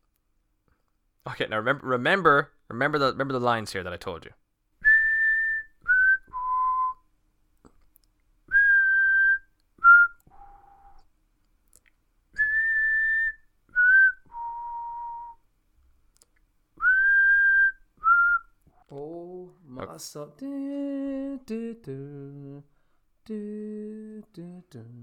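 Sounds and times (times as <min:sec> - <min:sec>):
speech: 0:01.2 - 0:04.4, 0:20.0 - 0:25.0
person whistling a film theme melody: 0:04.8 - 0:07.1, 0:08.5 - 0:11.1, 0:12.4 - 0:15.4, 0:16.8 - 0:18.5
voice singing or humming: 0:18.9 - 0:25.0.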